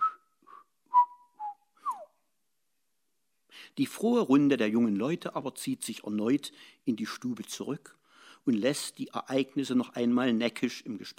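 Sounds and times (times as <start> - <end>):
faint high whistling through small holes: 0.0 - 2.2
speech: 3.7 - 11.1.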